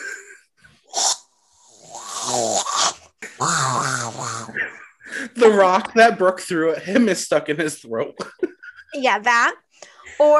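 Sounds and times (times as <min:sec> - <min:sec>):
person imitating Bigfoot growls and huff: 0:01.8 - 0:04.7
speech: 0:04.6 - 0:08.4, 0:09.0 - 0:09.6, 0:10.2 - 0:10.3.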